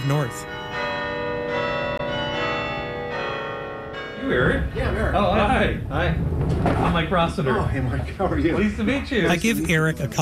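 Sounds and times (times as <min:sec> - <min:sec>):
campus bells ringing at lunchtime in New Haven, Connecticut: 0:00.0 - 0:06.2
speech: 0:00.1 - 0:00.6, 0:04.2 - 0:10.2.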